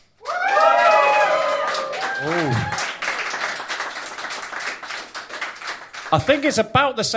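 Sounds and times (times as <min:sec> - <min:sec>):
group of voices cheering loudly: 0:00.2 - 0:03.7
speech: 0:06.1 - 0:07.1.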